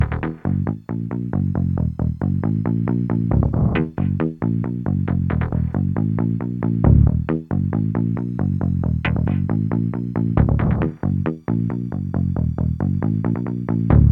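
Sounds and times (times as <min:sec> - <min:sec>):
bassline: 0:00.0 - 0:14.1.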